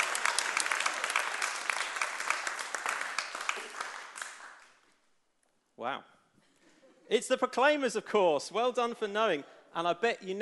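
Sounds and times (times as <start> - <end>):
audience clapping and applauding: 0.0 - 4.8
speech: 5.8 - 6.1, 7.1 - 10.4.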